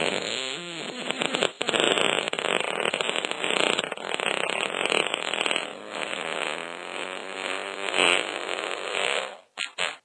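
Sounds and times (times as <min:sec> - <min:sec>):
fart ringtone: 0:00.0 - 0:10.0.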